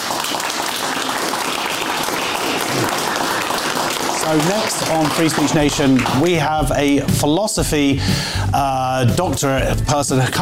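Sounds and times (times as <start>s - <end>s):
studio audience applause: 0.0s - 7.4s
speech: 4.3s - 10.3s.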